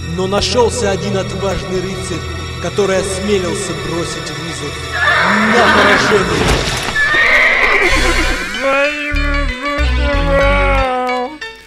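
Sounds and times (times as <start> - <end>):
speech: 0.2 - 6.8
horse neighing: 4.9 - 11.2.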